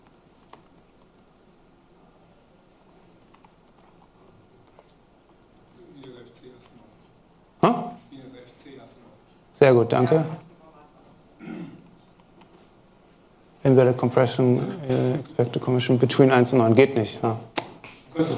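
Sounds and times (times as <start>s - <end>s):
typing on a computer keyboard: 0.0s - 1.4s, 3.2s - 5.4s, 12.0s - 12.6s
speech: 9.6s - 10.4s, 13.7s - 17.5s, 18.2s - 18.3s.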